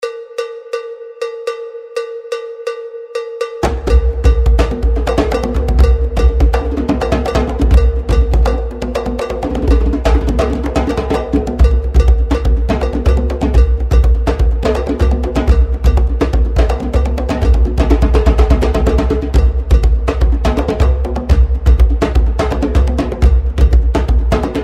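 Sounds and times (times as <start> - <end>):
clave: 0.0 - 24.6.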